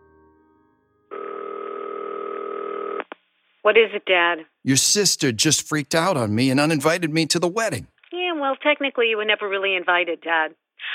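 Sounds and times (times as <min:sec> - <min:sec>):
steady telephone dial tone in a hallway: 0:01.1 - 0:03.0
speech: 0:03.6 - 0:10.6.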